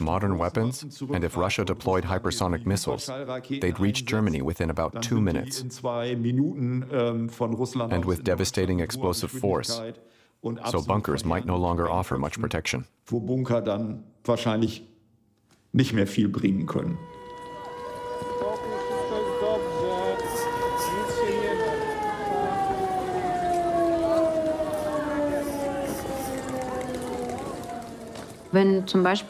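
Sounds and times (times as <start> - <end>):
speech: 0.0 - 14.9, 15.7 - 17.2, 28.5 - 29.2
civil defense air raid siren wailing: 16.7 - 29.2.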